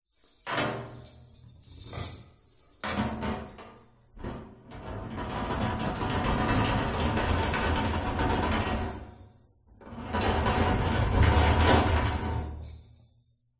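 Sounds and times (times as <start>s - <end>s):
jingle of key chains: 0.1s - 4.1s
metal prison door rattling open or closed: 0.4s - 13.0s.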